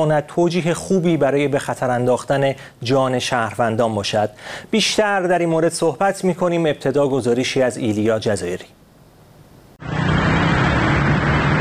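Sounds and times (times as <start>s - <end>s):
speech: 0.0s - 8.8s
dense Sunday street traffic in Tehran Iran: 9.8s - 11.5s.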